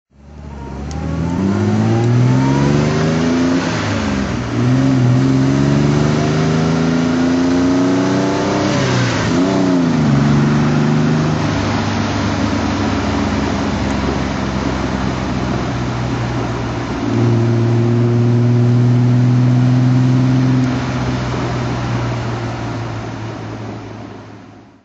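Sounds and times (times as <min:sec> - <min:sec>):
Austin Healey 3000 Mk2a driving: 0:00.1 - 0:24.8.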